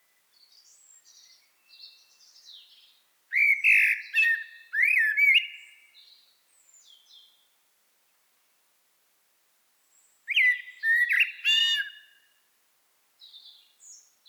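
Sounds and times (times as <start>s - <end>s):
common blackbird song: 0.0s - 7.6s, 9.8s - 12.4s, 13.2s - 14.2s.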